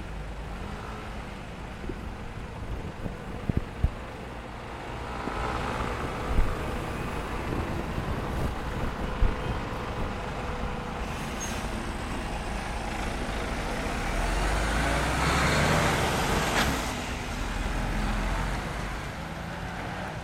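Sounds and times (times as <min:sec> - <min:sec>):
trucks and cars rumbling past a roundabout in Revel, France: 0:00.0 - 0:20.2
heavy vehicle air brake hiss: 0:11.0 - 0:11.8.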